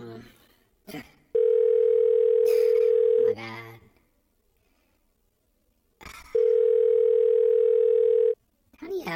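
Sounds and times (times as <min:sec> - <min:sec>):
speech: 0:00.2 - 0:01.1
telephone ringback tone: 0:01.4 - 0:03.3, 0:06.4 - 0:08.4.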